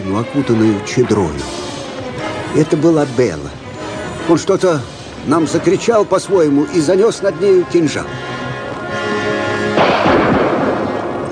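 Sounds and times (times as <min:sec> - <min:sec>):
sustained tonal background: 0:00.0 - 0:11.2
speech: 0:00.1 - 0:01.6, 0:02.5 - 0:03.6, 0:04.3 - 0:08.3
gunshot fired at a rider: 0:09.8 - 0:11.2.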